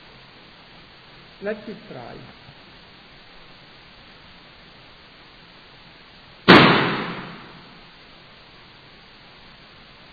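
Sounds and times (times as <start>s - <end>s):
speech: 1.4s - 2.6s
loud explosion: 6.5s - 7.8s.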